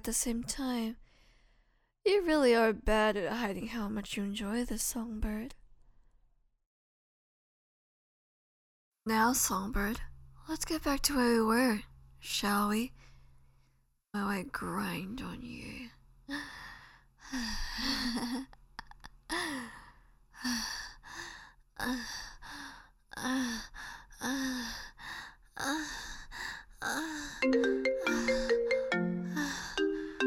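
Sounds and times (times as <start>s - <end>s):
speech: 0.0s - 1.0s, 2.0s - 5.6s, 9.0s - 13.1s, 14.1s - 18.6s, 19.3s - 19.8s, 20.4s - 28.5s
breathy gasps and sighs: 16.3s - 30.2s
melodic electronic phone ringtone: 27.4s - 30.2s.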